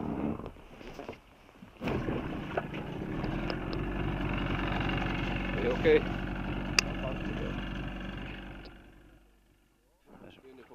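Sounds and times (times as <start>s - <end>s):
boat engine starting to pick up divers: 1.8s - 9.6s
speech: 5.8s - 6.2s.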